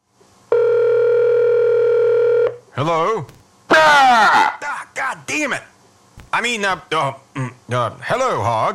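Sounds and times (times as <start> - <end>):
telephone ringing with a steady electronic tone: 0.5 - 2.6
speech: 2.8 - 5.7, 6.3 - 8.7.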